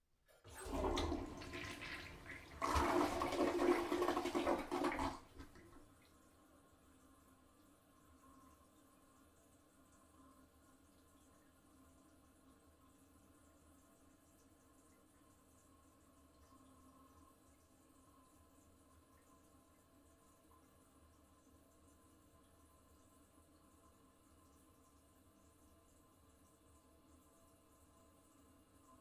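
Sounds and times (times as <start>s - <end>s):
toilet flushing in small bathroom: 0.3s - 6.2s.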